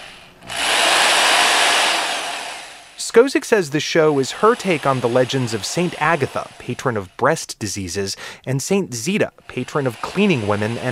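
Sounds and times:
power tool driving an anchor into a wall: 0.0 - 3.0, 4.0 - 7.2, 9.4 - 10.9
speech: 3.1 - 10.9.

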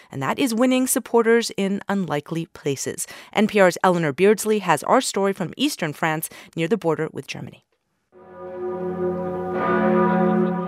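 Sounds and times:
speech: 0.1 - 7.7
large cathedral bells pealing over a city: 8.2 - 10.6.

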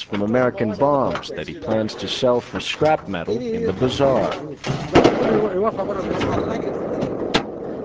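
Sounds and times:
voices talking: 0.0 - 7.8
speech: 0.1 - 7.1
cannon firing in the open air at a mountain summit: 4.6 - 7.5.

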